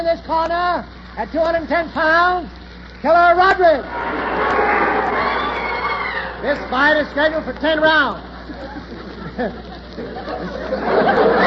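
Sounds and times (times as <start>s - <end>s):
speech: 0.0s - 5.2s, 6.4s - 8.8s, 9.4s - 11.4s
large boxing arena crowd roaring and cheering as fighters are introduced: 3.8s - 8.6s, 10.7s - 11.4s
laughter: 8.2s - 11.4s.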